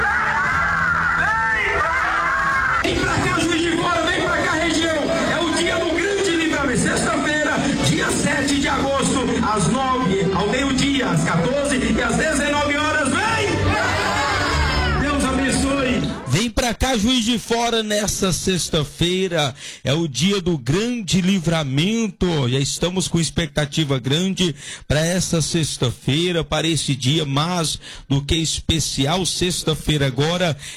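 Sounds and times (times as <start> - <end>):
large crowd cheering and shouting at a state headquarters: 0.0 - 16.4
speech: 16.6 - 30.7.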